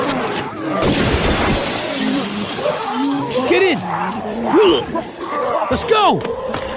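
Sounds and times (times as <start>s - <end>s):
falling glass shards: 0.0s - 3.8s
window glass shattering from gunshot: 0.0s - 3.8s
speech: 3.5s - 6.5s.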